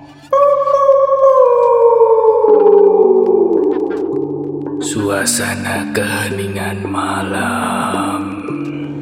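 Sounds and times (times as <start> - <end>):
dog howling: 0.3 - 4.9
speech: 5.1 - 8.2.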